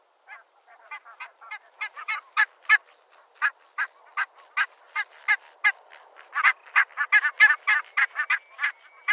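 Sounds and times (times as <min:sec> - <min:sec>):
barnacle goose flight calls: 0:00.2 - 0:09.1.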